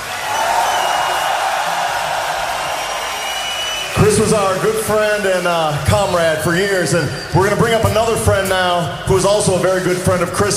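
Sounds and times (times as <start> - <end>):
large crowd clapping: 0.0 - 6.4
large crowd cheering: 0.0 - 10.5
speech: 4.2 - 10.5.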